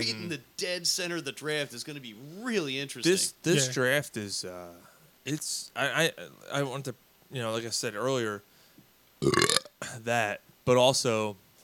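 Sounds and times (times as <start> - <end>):
speech: 0.0 - 8.5, 9.2 - 11.4
man burping while drinking beer: 9.2 - 9.9.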